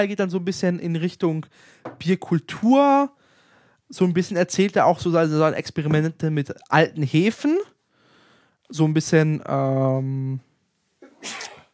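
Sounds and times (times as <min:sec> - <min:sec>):
speech: 0:00.0 - 0:03.2, 0:03.9 - 0:07.7, 0:08.7 - 0:10.5, 0:11.2 - 0:11.5
sneeze: 0:11.0 - 0:11.7.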